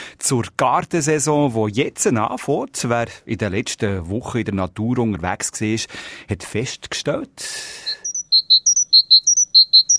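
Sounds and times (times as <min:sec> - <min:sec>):
speech: 0:00.2 - 0:08.0
great tit singing: 0:07.8 - 0:09.9.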